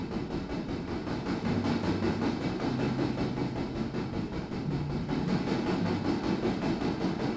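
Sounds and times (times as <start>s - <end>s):
freight train rolling on tracks heading west out of Montauk: 0.0s - 7.3s.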